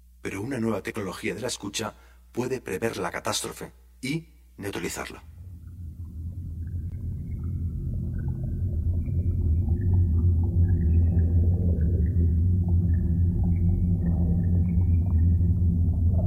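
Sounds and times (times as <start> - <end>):
speech: 0.8 - 5.3
dense underwater drone of low engine-like rumble: 5.3 - 16.2.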